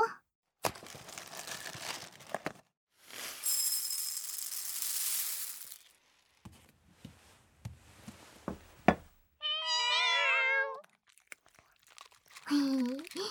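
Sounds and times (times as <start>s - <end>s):
food bag crinkling and rustling as a meal is prepared: 0.7s - 6.4s, 10.8s - 13.2s
hungry cat meowing, begging for food: 9.4s - 10.9s.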